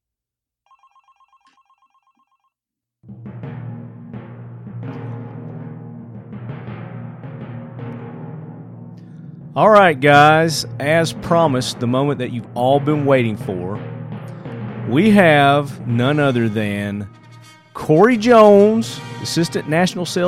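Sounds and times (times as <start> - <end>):
telephone ringing with steady electronic trill: 0.7 - 2.6
loud upbeat music: 9.6 - 13.8, 14.8 - 17.1, 17.8 - 20.2
speech: 9.6 - 13.9, 14.9 - 17.2, 17.8 - 20.2.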